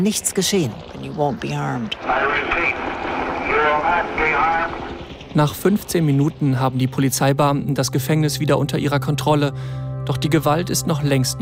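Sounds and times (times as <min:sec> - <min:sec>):
speech: 0:00.0 - 0:11.4
helicopter drone: 0:01.3 - 0:08.0
distorted loudspeaker voice booming announcements outdoors: 0:02.0 - 0:02.8, 0:03.4 - 0:04.8.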